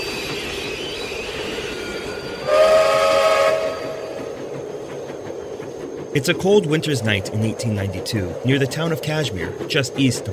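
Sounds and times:
continuous rumble of a moving train: 0.0s - 10.3s
train whistle blowing: 2.4s - 4.2s
speech: 6.1s - 10.3s.

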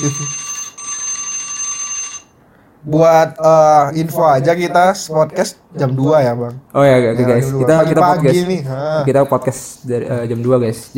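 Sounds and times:
speech: 0.0s - 0.4s, 2.8s - 10.9s
alarm ringing with shrill electronic tone: 0.0s - 2.4s.

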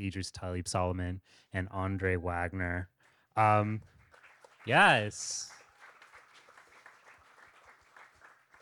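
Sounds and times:
speech: 0.0s - 4.0s, 4.6s - 5.6s
live audience applauding: 3.9s - 8.6s.

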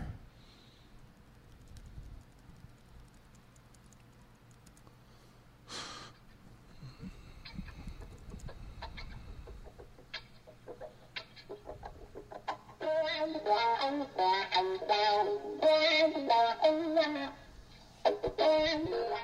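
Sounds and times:
electric guitar played through a wah-wah pedal: 7.4s - 19.2s.

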